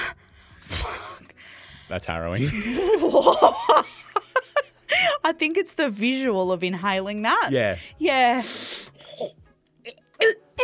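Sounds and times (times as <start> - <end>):
speech: 1.9 - 3.9, 5.3 - 9.4
laughter: 2.4 - 4.7
person dry retching: 9.0 - 10.6.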